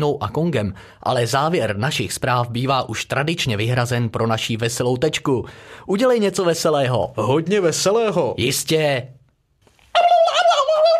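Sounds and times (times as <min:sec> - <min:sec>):
speech: 0:00.0 - 0:09.2
turkey gobbling: 0:10.0 - 0:10.9.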